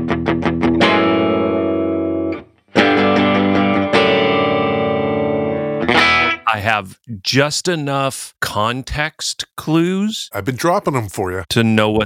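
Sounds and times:
brand-new Gretsch G6131-MY Jet electric guitar playing loud distorted chords: 0:00.0 - 0:06.5
speech: 0:06.5 - 0:12.0.

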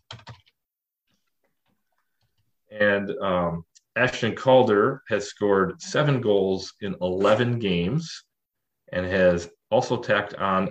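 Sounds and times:
typing on a computer keyboard: 0:00.0 - 0:00.6
speech: 0:02.7 - 0:08.3, 0:08.9 - 0:10.6.

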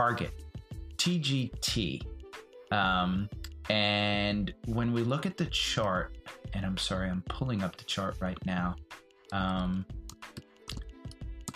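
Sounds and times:
speech: 0:00.0 - 0:00.4, 0:01.0 - 0:02.1, 0:02.7 - 0:10.0
computer keyboard typing with crisp key clicks: 0:10.1 - 0:11.5.

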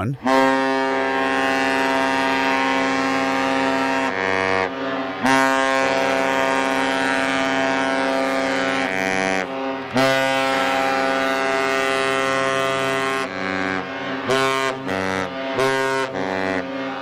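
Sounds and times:
speech: 0:00.0 - 0:00.4
deep dual-toned ship horn blasts: 0:00.0 - 0:17.0.

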